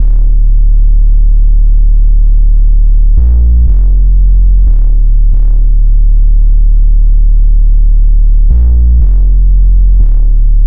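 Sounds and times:
hybrid magnetic bass: 0.0s - 10.6s
hybrid magnetic electronic pop island future afrobeat loop in D minor: 3.2s - 5.7s, 8.5s - 10.6s.

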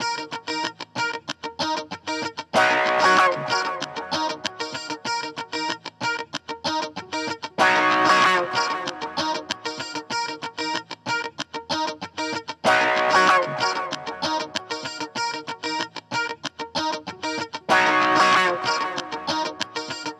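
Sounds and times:
stacked guitars in E flat minor: 0.0s - 20.1s.

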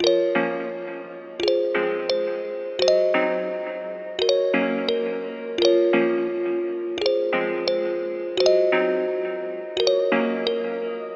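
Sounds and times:
keys music in B minor: 0.0s - 11.1s.

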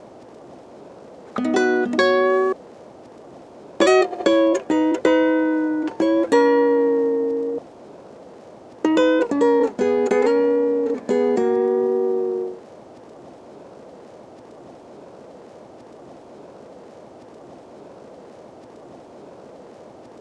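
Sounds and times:
guitar loop: 1.3s - 2.6s, 3.8s - 7.6s, 8.8s - 12.6s.

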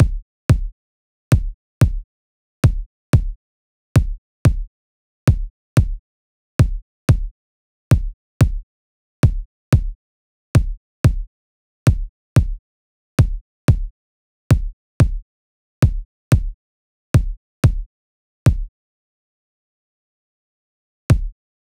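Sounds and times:
kick drum: 0.0s - 3.4s, 4.0s - 4.7s, 5.3s - 6.0s, 6.6s - 7.3s, 7.9s - 8.6s, 9.2s - 10.0s, 10.6s - 11.3s, 11.9s - 12.6s, 13.2s - 13.9s, 14.5s - 15.2s, 15.8s - 16.6s, 17.2s - 17.9s, 18.5s - 18.7s, 21.1s - 21.4s.

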